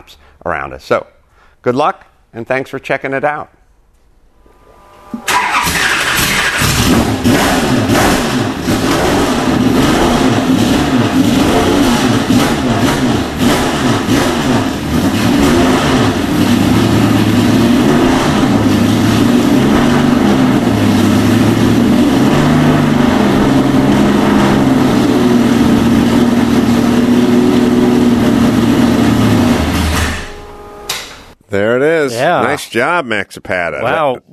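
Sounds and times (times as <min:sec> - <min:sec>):
speech: 0:00.1 - 0:03.6, 0:32.2 - 0:34.3
Datsun 240Z race car engine starting, idling and revving in a shop: 0:04.8 - 0:30.9.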